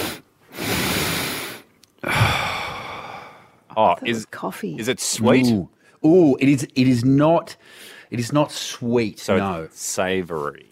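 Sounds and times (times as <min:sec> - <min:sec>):
person taking long breathy sniffs: 0:00.0 - 0:02.4
speech: 0:03.8 - 0:10.7.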